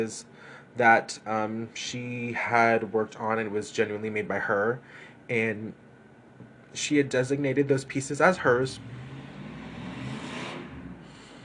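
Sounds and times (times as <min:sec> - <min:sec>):
speech: 0:00.0 - 0:05.8, 0:06.7 - 0:09.0
car driving past outside: 0:08.5 - 0:11.4.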